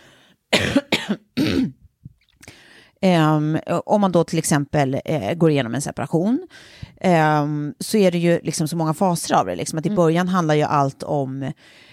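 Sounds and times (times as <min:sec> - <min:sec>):
harsh raspy coughs: 0:00.5 - 0:01.8
speech: 0:03.0 - 0:11.9.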